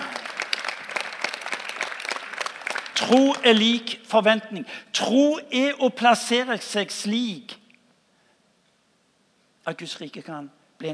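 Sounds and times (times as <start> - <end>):
audience applause: 0.0 - 3.8
speech: 3.0 - 7.6, 9.6 - 10.9.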